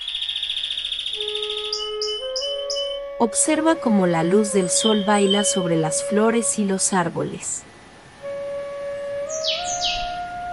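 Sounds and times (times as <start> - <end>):
canaries singing over a sunny flower garden: 0.0 - 3.2, 4.0 - 6.0, 9.3 - 10.2
speech: 3.2 - 7.6.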